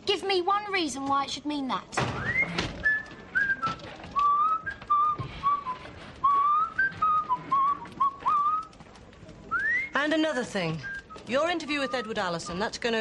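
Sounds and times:
speech: 0.3 - 2.8, 10.0 - 12.9
person whistling a tune: 2.2 - 8.7, 9.5 - 10.0.

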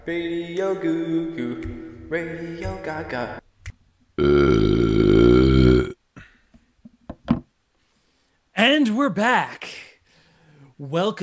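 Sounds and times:
speech: 0.0 - 3.4, 9.0 - 9.6, 10.8 - 11.2
loud belch: 4.2 - 6.0.

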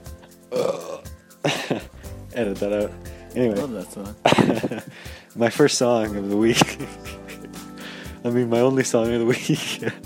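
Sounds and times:
burp: 0.5 - 1.1
speech: 2.4 - 7.2, 8.2 - 10.0.

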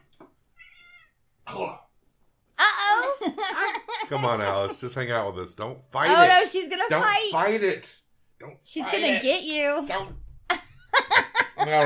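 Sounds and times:
cat chirping and meowing: 0.5 - 1.2
speech: 1.5 - 1.8, 4.1 - 10.2, 11.6 - 11.8
laughter: 2.7 - 5.0, 10.5 - 11.8.

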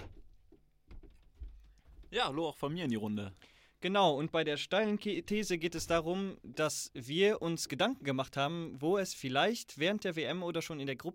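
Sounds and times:
door opening with soft clunks and rattle: 0.0 - 2.2
speech: 2.1 - 11.1.

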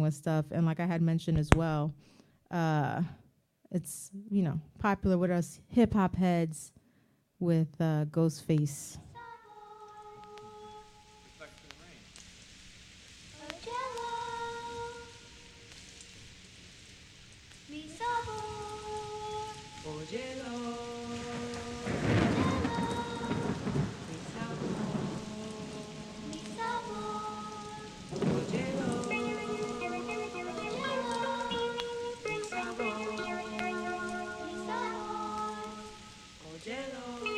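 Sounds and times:
speech: 0.0 - 6.8, 7.4 - 9.1
heavy rain pouring: 10.0 - 37.3
rumbling thunder: 19.6 - 37.3
slow melodic music intro: 24.6 - 36.4, 37.2 - 37.3.

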